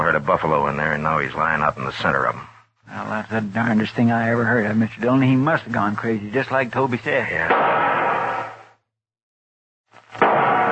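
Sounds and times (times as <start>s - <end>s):
speech: 0.3s - 7.7s
rifle gunshots fired as a signal for help: 7.5s - 8.7s, 10.2s - 10.6s.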